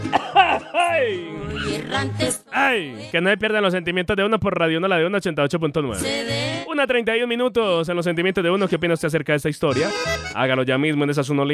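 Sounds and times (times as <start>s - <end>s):
man coughing: 0.0s - 1.2s
laughter: 0.0s - 1.8s
speech: 1.0s - 11.5s.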